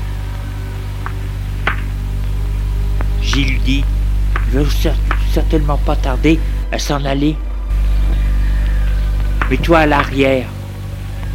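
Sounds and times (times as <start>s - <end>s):
car engine rumbling: 0.0s - 11.3s
speech: 3.4s - 7.5s, 9.5s - 10.6s.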